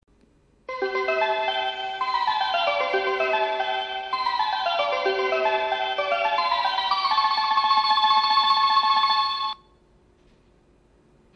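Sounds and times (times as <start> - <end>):
melody: 0.7 - 9.6.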